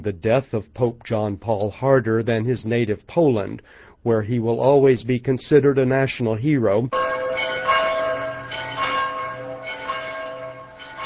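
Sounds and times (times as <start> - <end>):
speech: 0.0 - 7.7
church bells tolling: 6.9 - 11.0.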